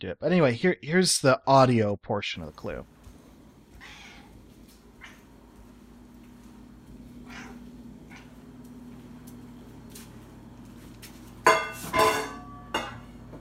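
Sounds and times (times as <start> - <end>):
speech: 0.0 - 3.0
cat meowing and chirping at feeding time: 3.8 - 4.3.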